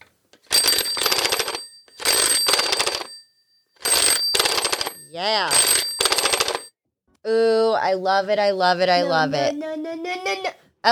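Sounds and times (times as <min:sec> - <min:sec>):
telephone ringtone triggered by pushing a blue phone button: 0:00.5 - 0:06.7
speech: 0:05.2 - 0:05.8, 0:07.3 - 0:10.9.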